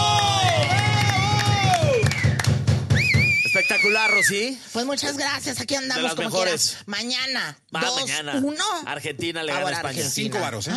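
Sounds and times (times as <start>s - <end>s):
audience applauding: 0.0s - 4.2s
drawn-out whoop or whistle: 0.0s - 4.5s
people cheering: 0.0s - 4.5s
speech: 4.3s - 10.7s.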